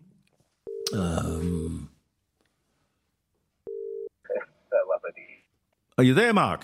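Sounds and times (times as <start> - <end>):
speech: 0.9 - 1.9, 6.0 - 6.6
electronic telephone ring tone: 3.7 - 4.4.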